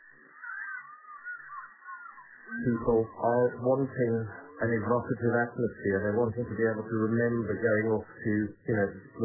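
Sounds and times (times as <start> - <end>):
hadada ibis giving raucous nasal calls: 0.1 - 4.5
speech: 2.5 - 9.2.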